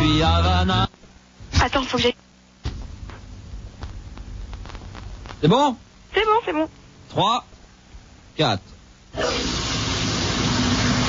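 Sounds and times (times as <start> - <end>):
speech: 0.2 - 1.0, 1.6 - 2.3, 5.4 - 7.5, 8.4 - 9.5
shower running: 9.2 - 11.0.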